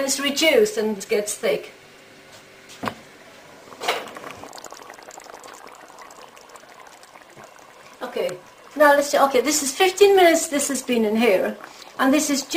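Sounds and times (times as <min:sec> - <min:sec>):
speech: 0:00.0 - 0:01.8, 0:08.2 - 0:12.5
curry sauce boiling in a pot: 0:03.3 - 0:12.5.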